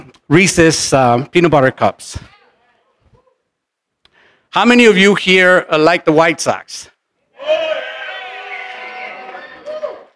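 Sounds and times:
speech: 0:00.3 - 0:02.3, 0:04.5 - 0:07.9
person cheering and whooping: 0:07.4 - 0:10.1.

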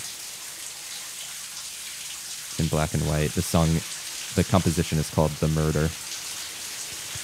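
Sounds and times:
shower water spraying in a film scene: 0:00.0 - 0:07.2
speech: 0:02.6 - 0:06.1.

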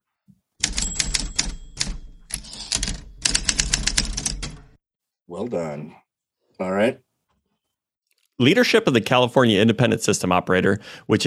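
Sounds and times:
typewriter typing: 0:00.6 - 0:04.8
speech: 0:05.3 - 0:06.0, 0:06.6 - 0:07.1, 0:08.4 - 0:11.2.

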